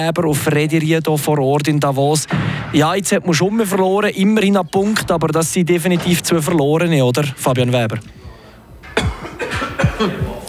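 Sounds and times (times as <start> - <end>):
speech: 0.0 - 8.2
reporter coughing in short harsh bursts: 8.9 - 10.4.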